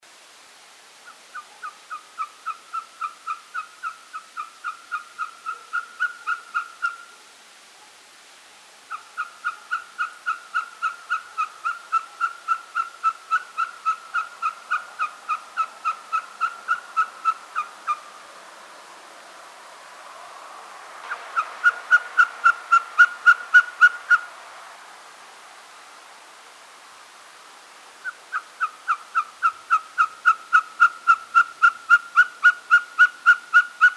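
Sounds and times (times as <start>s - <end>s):
Mochuelo patagon Glaucidium nana call: 1.0s - 7.1s, 8.9s - 18.0s, 21.1s - 24.3s, 28.0s - 33.9s.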